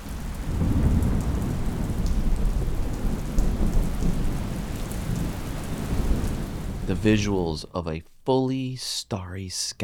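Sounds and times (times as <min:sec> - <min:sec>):
heavy rain pouring: 0:00.0 - 0:07.6
deep thunder rumbling: 0:00.1 - 0:07.2
speech: 0:06.9 - 0:09.8.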